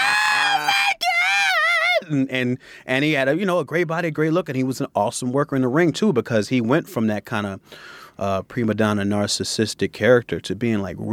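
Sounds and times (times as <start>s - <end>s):
person imitating women screaming at a wrestler: 0.0s - 2.2s
speech: 2.1s - 11.1s.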